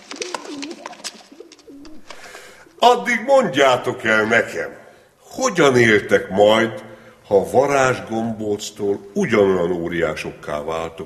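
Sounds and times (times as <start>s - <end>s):
pigeons' wings fluttering: 0.0s - 2.8s
released pigeons cooing: 0.0s - 3.2s
speech: 2.8s - 4.8s, 5.4s - 11.0s.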